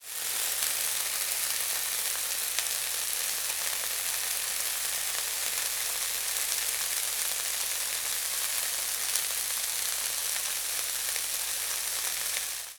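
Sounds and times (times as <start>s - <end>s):
frying pan sizzling: 0.0s - 12.7s.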